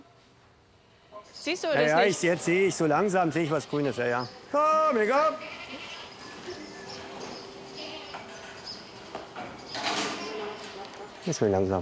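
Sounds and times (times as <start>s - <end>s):
steady outdoor hum: 0.0s - 11.8s
speech: 1.4s - 5.9s, 11.2s - 11.8s
herd of goats bleating: 4.9s - 7.1s, 7.7s - 8.6s.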